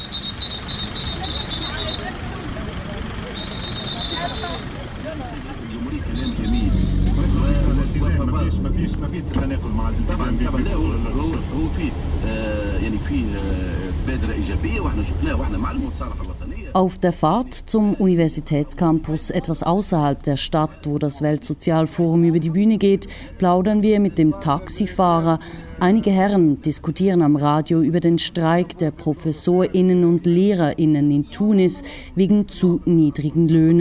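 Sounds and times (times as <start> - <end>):
busy street traffic engine rumble at a crowded intersection: 0.0 - 33.8
murmur of voices: 1.0 - 33.8
short high-pitched horn or whistle blasts: 3.4 - 4.8
speech: 14.2 - 33.8.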